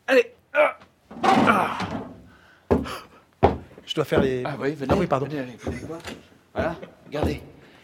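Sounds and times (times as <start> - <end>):
speech: 0.1 - 0.3, 4.0 - 7.5
cellar trapdoor creaking open with a grinding rasp: 1.1 - 2.3.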